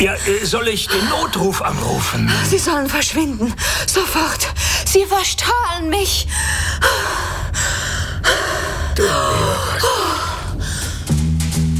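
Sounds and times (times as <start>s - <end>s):
speech: 0.0s - 7.3s, 9.0s - 10.2s
woman panting heavily in an emergency: 2.2s - 5.0s, 6.2s - 11.1s.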